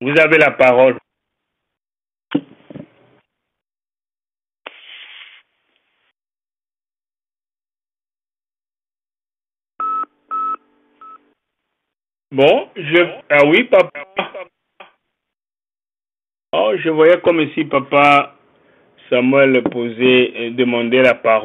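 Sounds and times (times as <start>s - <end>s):
speech: 0.0s - 1.1s, 12.3s - 14.5s, 16.6s - 18.4s, 19.1s - 21.4s
telephone keypad DTMF tones: 9.8s - 11.2s.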